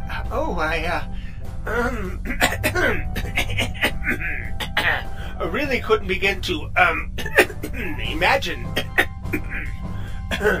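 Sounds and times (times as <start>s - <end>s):
speech: 0.3s - 10.5s
small nervous throaty cough: 1.9s - 5.1s, 7.2s - 8.0s, 8.7s - 9.7s, 10.3s - 10.5s.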